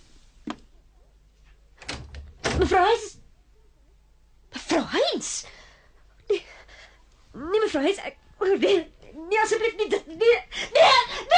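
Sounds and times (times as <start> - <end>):
room door slamming shut: 1.8 - 2.9
speech: 2.6 - 3.2, 7.7 - 11.3.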